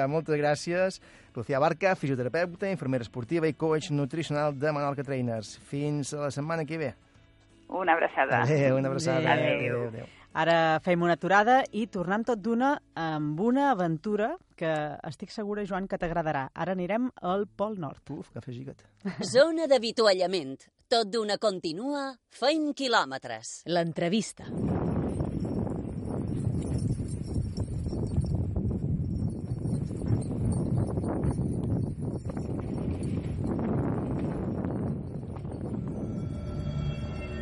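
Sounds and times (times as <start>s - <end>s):
speech: 0.0s - 7.1s, 7.7s - 24.9s
gusty wind: 24.5s - 37.3s
metallic clanking and rattling chains: 24.7s - 35.9s.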